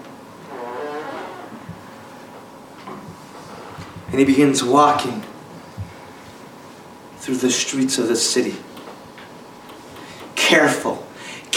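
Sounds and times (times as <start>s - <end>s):
door creaking open with a squeaky hinge groan: 0.5s - 1.8s
speech: 4.1s - 5.3s, 7.3s - 8.8s.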